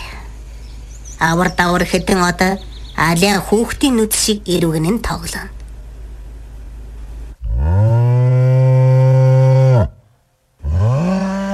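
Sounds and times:
speech: 0:01.2 - 0:05.6
bull bellowing: 0:07.4 - 0:11.5.

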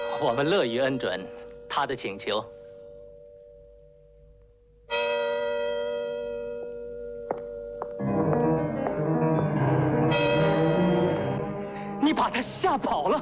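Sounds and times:
deep ringing clock bell striking midnight: 0:00.0 - 0:03.8, 0:04.9 - 0:11.5
speech: 0:00.2 - 0:02.6, 0:12.4 - 0:13.1.

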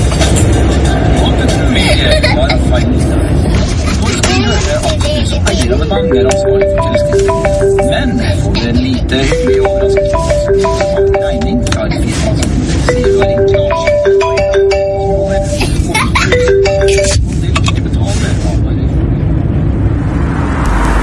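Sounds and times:
moving car interior rumble with engine and road noise: 0:00.0 - 0:21.0
phone ringtone playing a repeating melodic tune: 0:05.9 - 0:12.2, 0:12.8 - 0:17.3.

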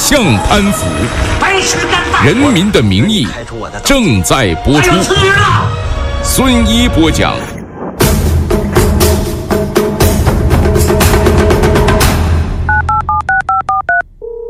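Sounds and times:
dramatic music: 0:00.0 - 0:12.9
speech: 0:00.1 - 0:07.5
phone keypad beeps with dual-pitched tones: 0:12.7 - 0:14.4.

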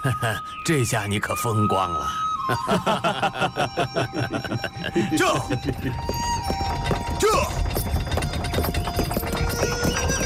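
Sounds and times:
speech: 0:00.0 - 0:06.3
laughter: 0:02.5 - 0:06.0
hooves of a horse-drawn carriage clip-clopping in the ancient kingdom of Wu: 0:05.4 - 0:10.2.

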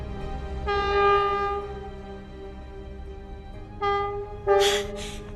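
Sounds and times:
departing train horn blasts: 0:00.6 - 0:01.8, 0:03.8 - 0:05.0.

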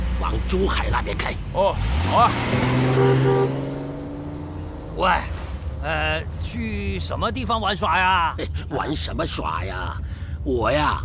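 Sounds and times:
car engine droning as the vehicle pulls away: 0:00.0 - 0:08.7
speech: 0:00.3 - 0:03.7, 0:05.0 - 0:11.0.

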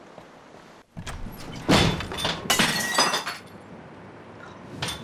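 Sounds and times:
glass pane falling and shattering: 0:01.2 - 0:03.6
glass shards tinkling: 0:02.5 - 0:03.6.

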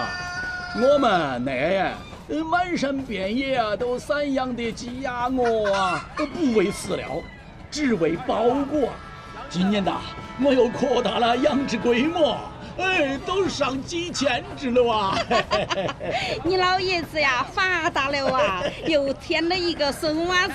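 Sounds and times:
home-raised hens clucking at a market stall: 0:00.0 - 0:20.5
speech: 0:00.7 - 0:20.5
laughter: 0:09.6 - 0:16.9, 0:17.8 - 0:19.6.

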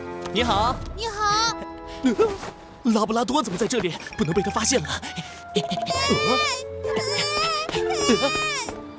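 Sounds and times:
speech: 0:00.3 - 0:01.1, 0:02.0 - 0:06.7, 0:08.1 - 0:08.8
baby wailing in long rising and falling cries: 0:05.8 - 0:08.7.

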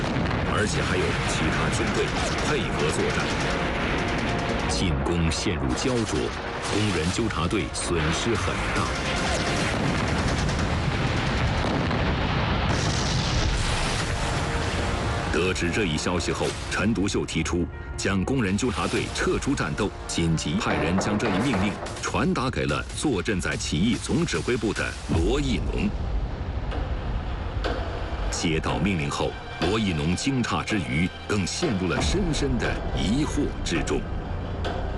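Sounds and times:
rapid gunfire crackling at a railway station during an armed workers' uprising: 0:00.0 - 0:15.1
heavy booming artillery explosions: 0:00.0 - 0:17.2, 0:18.8 - 0:28.4
speech: 0:00.6 - 0:03.8, 0:04.7 - 0:09.3, 0:15.4 - 0:26.1, 0:28.4 - 0:34.8.

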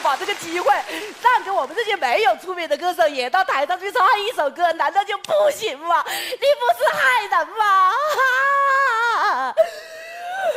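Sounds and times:
speech: 0:00.1 - 0:08.8
woman crying in high wailing sobs: 0:06.0 - 0:10.5.

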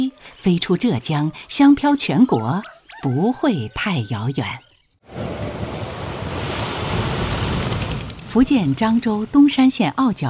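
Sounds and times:
speech: 0:00.0 - 0:05.3, 0:08.4 - 0:10.2
sea waves at a fishing harbor: 0:05.1 - 0:08.3
breezy wind over the water: 0:05.1 - 0:09.4.

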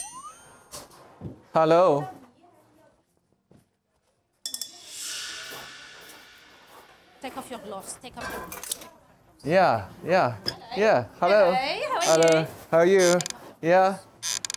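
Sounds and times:
speech: 0:01.2 - 0:02.2, 0:07.2 - 0:14.4
sizzling from a hot wok during stir-frying: 0:04.5 - 0:07.3.

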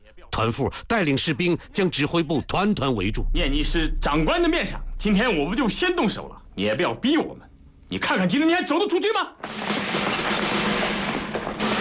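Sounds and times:
speech: 0:00.4 - 0:09.7
rapid gunfire inside a small command post: 0:09.4 - 0:11.8.

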